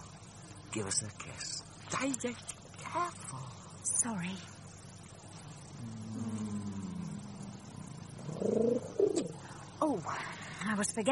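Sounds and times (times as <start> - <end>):
speech: 0.7 - 4.6, 9.8 - 11.1
pigeon cooing in a shoebox: 5.8 - 9.4.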